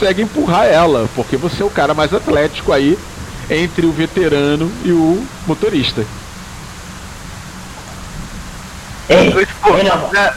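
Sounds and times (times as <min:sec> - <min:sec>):
speech: 0:00.0 - 0:06.2, 0:09.1 - 0:10.3
heavy rain: 0:00.0 - 0:10.3.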